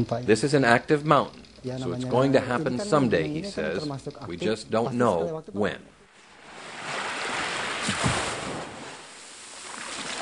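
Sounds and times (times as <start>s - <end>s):
speech: 0.0s - 6.0s
surf washing on the beach at Anak Krakatau: 6.4s - 10.2s.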